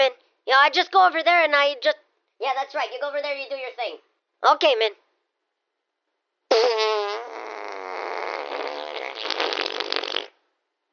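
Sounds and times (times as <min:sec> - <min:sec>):
speech: 0:00.0 - 0:05.0
long loud fart: 0:06.5 - 0:10.5.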